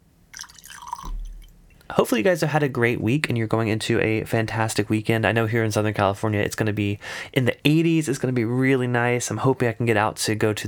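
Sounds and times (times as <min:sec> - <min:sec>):
high-proof rye whiskey being poured into a glass: 0:00.3 - 0:01.8
faint clink of a glass: 0:00.4 - 0:01.6
speech: 0:01.9 - 0:10.6.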